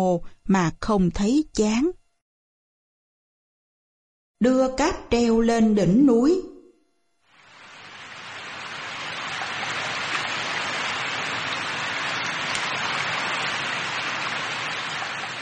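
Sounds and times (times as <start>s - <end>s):
speech: 0.0s - 2.0s, 4.4s - 6.5s
steady rain pattering at night on a mountaintop: 7.4s - 15.4s.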